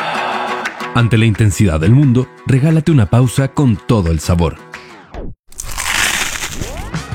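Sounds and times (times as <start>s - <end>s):
speech: 1.0s - 4.7s
crunchy bite into food: 5.5s - 7.0s.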